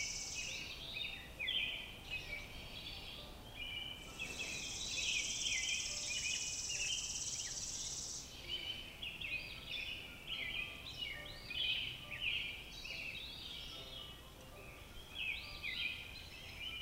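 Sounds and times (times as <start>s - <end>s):
robin song: 0.0s - 16.8s
steady high insect buzz: 4.0s - 8.3s.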